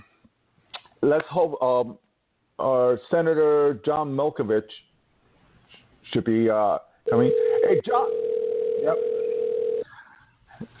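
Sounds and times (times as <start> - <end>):
speech: 1.0 - 2.0, 2.6 - 4.9, 6.0 - 9.2
telephone ring tone heard down a phone line: 7.1 - 9.8.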